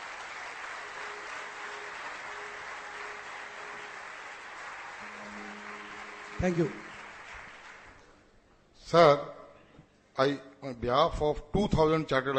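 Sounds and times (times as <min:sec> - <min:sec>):
large audience applause in standing ovation: 0:00.0 - 0:08.2
speech: 0:06.4 - 0:06.8, 0:08.9 - 0:09.3, 0:10.2 - 0:12.3.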